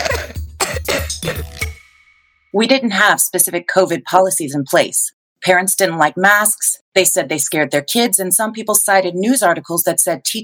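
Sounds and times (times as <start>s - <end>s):
child coughing in a rapid, harsh fit: 0.0s - 1.6s
speech: 2.6s - 10.4s.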